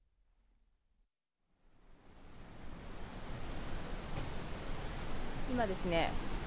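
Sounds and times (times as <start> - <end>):
roar of a waterfall: 2.2 - 6.4
speech: 5.5 - 6.3.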